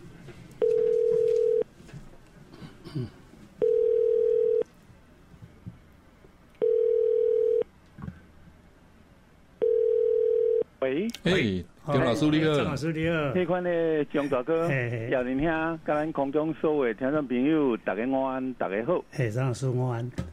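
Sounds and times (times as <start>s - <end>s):
telephone ringback tone as radio show calls guest: 0.6s - 1.7s, 3.6s - 4.6s, 6.6s - 7.6s, 9.6s - 10.6s
speech: 3.0s - 3.2s, 10.9s - 20.3s.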